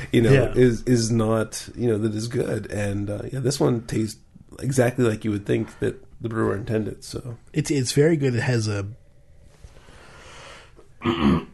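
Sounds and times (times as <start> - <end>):
speech: 0.0 - 9.0, 11.0 - 11.5
rough throaty cough: 11.0 - 11.5.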